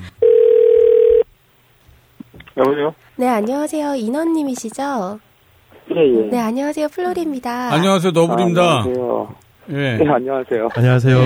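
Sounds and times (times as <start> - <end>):
electronic telephone ringback tone while placing a call: 0.2 - 1.2
speech: 2.6 - 5.3, 5.9 - 11.2.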